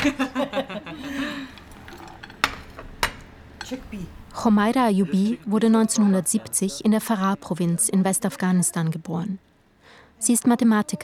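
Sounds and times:
speech: 0:00.0 - 0:00.7, 0:03.7 - 0:09.5, 0:10.2 - 0:11.0
person chuckling: 0:00.0 - 0:01.6
crockery clinking while serving green tea: 0:01.5 - 0:04.0
dishes rattling: 0:01.5 - 0:04.4.

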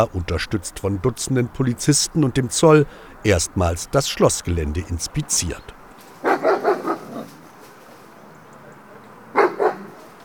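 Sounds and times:
speech: 0:00.0 - 0:05.8
faint outdoor noise: 0:00.0 - 0:10.2
muzzled German shepherd barking deeply: 0:06.2 - 0:07.3, 0:09.3 - 0:10.0.

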